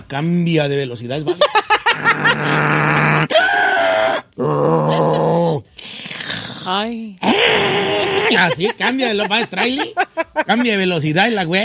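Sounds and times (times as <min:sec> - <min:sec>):
speech: 0:00.1 - 0:03.7, 0:06.7 - 0:07.4, 0:08.3 - 0:11.6
laughter: 0:01.3 - 0:03.3, 0:04.5 - 0:05.6, 0:07.6 - 0:11.6
person imitating pig-like snoring grunts: 0:02.1 - 0:03.3, 0:04.4 - 0:08.5.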